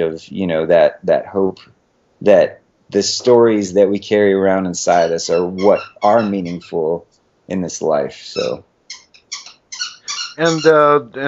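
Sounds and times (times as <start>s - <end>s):
speech: 0.0s - 8.7s, 10.4s - 11.2s
dog squeaking: 4.9s - 6.8s, 8.4s - 11.2s.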